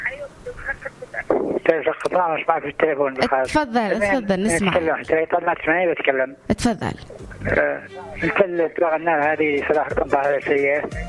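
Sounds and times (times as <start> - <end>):
radio playing at a caller's end of a phone call: 0.0 - 2.0, 2.7 - 9.1
speech: 1.8 - 11.0
person talking over a phone call into a radio program: 3.2 - 5.2, 6.5 - 7.7.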